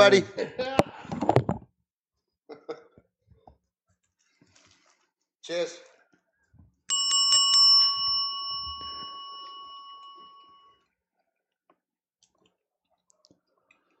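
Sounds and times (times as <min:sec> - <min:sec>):
speech: 0:00.0 - 0:00.7, 0:05.5 - 0:05.9
hand bell rung to mark the New Year: 0:06.9 - 0:10.8.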